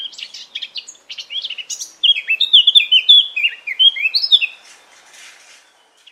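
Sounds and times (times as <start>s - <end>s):
Eurasian blackcap singing: 0.0s - 4.6s.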